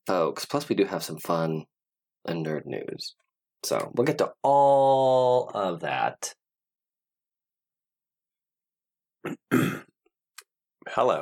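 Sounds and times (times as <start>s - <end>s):
speech: 0.1s - 6.4s, 9.2s - 9.9s, 10.8s - 11.1s
harsh rasping cough to dislodge a piece of olive stuck in the throat: 9.2s - 10.0s
throat clearing: 9.2s - 10.0s.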